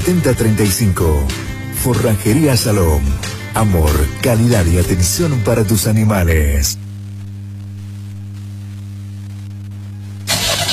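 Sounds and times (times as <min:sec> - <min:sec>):
speech: 0:00.1 - 0:06.8
car engine cranking and roaring to life: 0:10.3 - 0:10.7.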